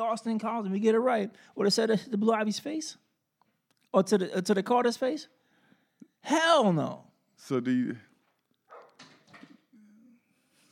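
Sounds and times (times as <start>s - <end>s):
speech: 0.0s - 3.0s, 3.9s - 5.4s, 6.2s - 8.1s
noise: 0.0s - 10.7s
dog barking: 8.7s - 9.0s.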